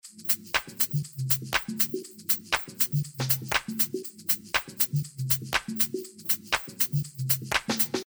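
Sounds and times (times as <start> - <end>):
wet drums: 0.1 - 8.0.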